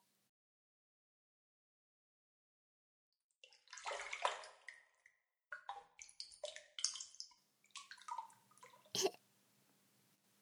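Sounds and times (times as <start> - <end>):
bath water splashing and dripping in a tub: 3.5 - 8.9.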